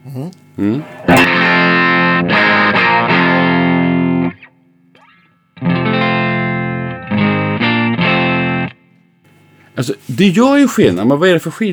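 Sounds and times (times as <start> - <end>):
speech: 0.0 - 1.4, 9.8 - 11.7
heavily distorted electric guitar chords with the pickup set higher: 0.6 - 9.6.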